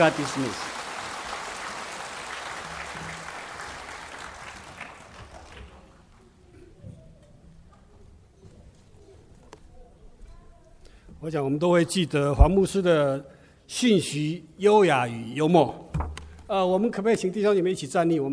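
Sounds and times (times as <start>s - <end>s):
speech: 0.0s - 0.7s, 11.2s - 15.8s, 16.5s - 18.3s
congregation applauding: 0.0s - 6.1s.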